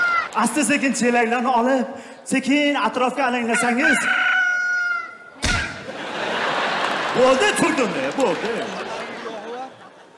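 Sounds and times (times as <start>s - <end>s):
speech: 0.4s - 4.3s, 7.2s - 8.9s
rooster crowing in a village morning: 3.6s - 5.2s
loud thump: 5.4s - 5.9s
laughter: 5.7s - 10.1s.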